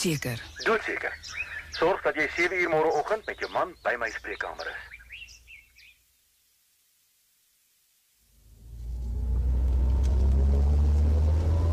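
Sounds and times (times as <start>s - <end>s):
speech: 0.0s - 4.9s
brief high bird chirps: 0.0s - 6.0s
car driving with deep engine and road rumble: 8.4s - 11.7s.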